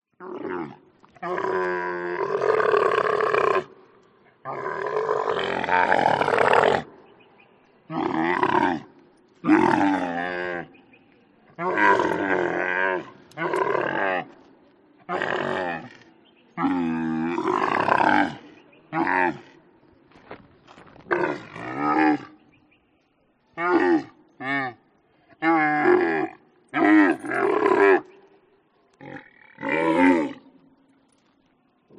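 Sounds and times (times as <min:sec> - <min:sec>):
camel: 0:00.0 - 0:31.9.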